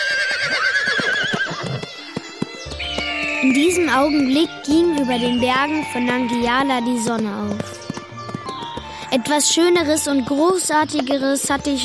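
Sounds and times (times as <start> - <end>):
horse giving a long wavering whinny: 0.0 - 2.2
horse hoofbeats clopping: 0.0 - 11.8
speech: 3.4 - 7.8, 9.1 - 11.8.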